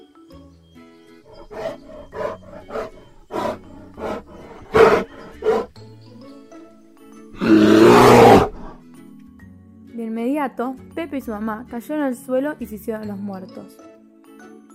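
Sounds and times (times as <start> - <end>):
ferocious bear growl with grunting snarls: 1.3 - 5.8, 7.4 - 8.8
speech: 10.5 - 13.9.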